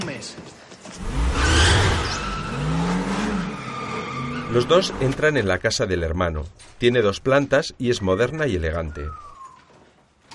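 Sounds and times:
speech: 0.2s - 0.5s, 4.5s - 9.3s
sports car engine revving in a parking lot: 1.0s - 5.2s.

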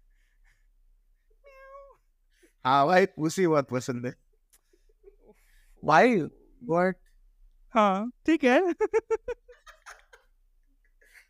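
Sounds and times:
cat meowing: 1.4s - 2.0s
speech: 2.6s - 4.2s, 5.8s - 7.0s, 7.7s - 9.4s.

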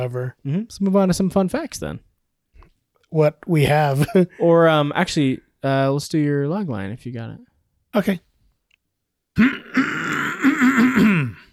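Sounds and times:
speech: 0.0s - 2.1s, 3.1s - 8.3s, 9.4s - 10.0s, 10.8s - 11.4s
person performing an exaggerated throat clearing: 9.4s - 11.5s.

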